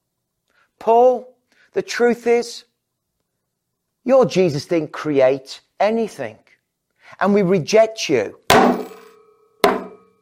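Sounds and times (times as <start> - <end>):
speech: 0.8 - 2.7, 4.0 - 6.4, 7.1 - 8.9
metallic ringing hammer blows: 8.5 - 10.1.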